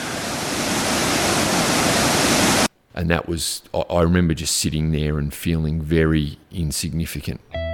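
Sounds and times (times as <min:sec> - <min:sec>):
swollen waterfall roaring: 0:00.0 - 0:02.7
speech: 0:03.0 - 0:07.6.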